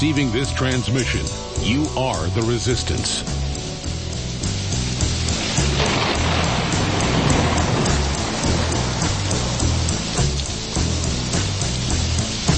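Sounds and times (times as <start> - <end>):
speech: 0.0 - 3.5
dense storm rain hissing and pattering: 0.0 - 12.5
low pulsing bass line: 0.0 - 12.5.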